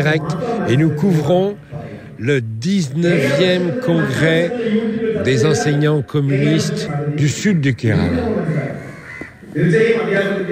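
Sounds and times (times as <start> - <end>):
speech: 0.0 - 8.6, 9.5 - 10.5
faint murmur of voices: 0.0 - 10.5
crow cawing loudly and harshly: 8.0 - 9.6.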